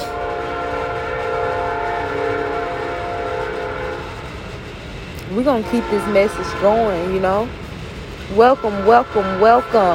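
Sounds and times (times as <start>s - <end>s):
low rumbling rail noise of a train starting up: 0.0s - 9.9s
train horn-like drone while starting up: 0.0s - 9.9s
speech: 5.4s - 7.6s, 8.3s - 9.9s.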